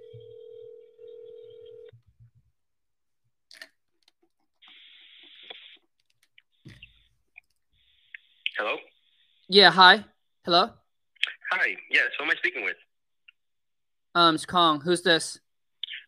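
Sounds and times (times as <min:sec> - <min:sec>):
telephone dial tone: 0:00.0 - 0:01.9
speech: 0:08.6 - 0:08.9, 0:09.5 - 0:10.8, 0:11.6 - 0:12.8, 0:14.1 - 0:15.4.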